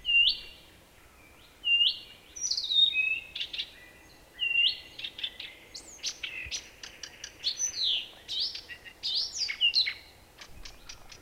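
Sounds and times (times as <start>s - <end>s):
marsh warbler singing from a rose bush in a yard in southeastern Finland: 0.0s - 11.1s.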